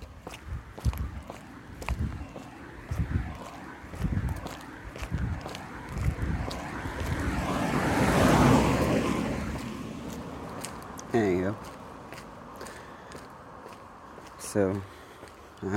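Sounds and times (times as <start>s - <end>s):
rush of wind or passing vehicle: 0.0s - 12.6s
footsteps crunching outdoors in a park: 0.0s - 15.7s
speech: 14.5s - 14.9s.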